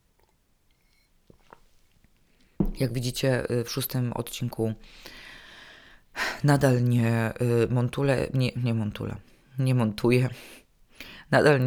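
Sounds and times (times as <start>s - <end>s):
sipping and swallowing water: 1.2s - 1.8s
speech: 2.8s - 5.2s, 6.4s - 10.6s, 11.3s - 11.6s.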